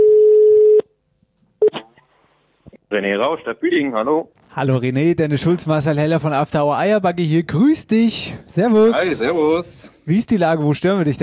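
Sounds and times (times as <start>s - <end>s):
outgoing telephone call ringback tone: 0.0s - 0.8s
speech: 2.9s - 11.2s.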